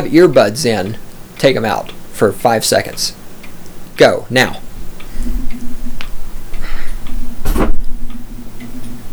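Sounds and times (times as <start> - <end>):
speech: 0.0 - 3.2, 4.0 - 4.7
faint clicks and taps: 0.0 - 9.1
low steady hum: 0.0 - 9.1
microphone being handled and knocked about: 7.4 - 8.0.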